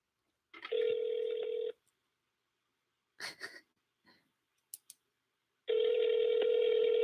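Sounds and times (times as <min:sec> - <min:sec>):
long steady electronic phone ring tones on the line: 0:00.6 - 0:01.8, 0:05.7 - 0:07.0.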